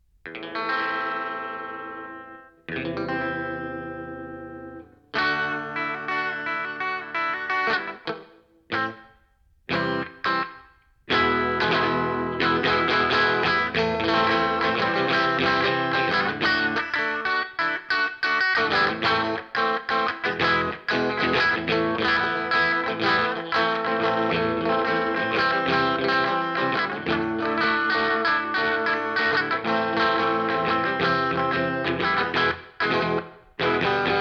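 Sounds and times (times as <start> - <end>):
electric instrument playing a song: 0.3 - 34.1.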